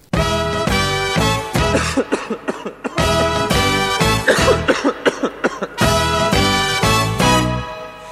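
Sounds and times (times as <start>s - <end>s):
song from Argentina about winter colds and coughs: 0.1s - 2.0s, 3.0s - 4.9s, 5.8s - 8.1s
person coughing: 1.7s - 5.8s.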